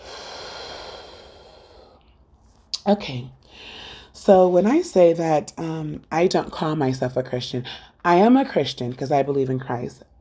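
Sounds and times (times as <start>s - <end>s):
long exhale through the teeth in a breathing exercise: 0.0s - 4.1s
speech: 2.8s - 10.1s.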